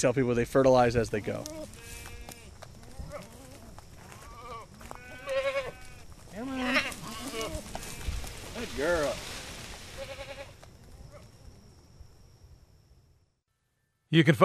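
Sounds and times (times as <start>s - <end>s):
speech: 0.0s - 1.8s, 8.7s - 9.3s, 14.1s - 14.4s
steady outdoor rustling: 0.0s - 13.5s
outdoor wind: 0.0s - 14.4s
goats bleating: 1.2s - 11.3s.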